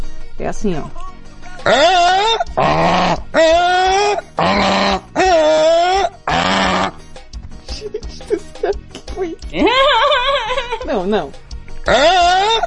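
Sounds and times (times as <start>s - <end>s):
speech: 0.4s - 5.0s, 10.8s - 12.6s
person imitating a moose call with nasal bellows: 1.6s - 7.0s, 9.5s - 10.7s, 11.9s - 12.6s
laughter: 7.7s - 10.9s.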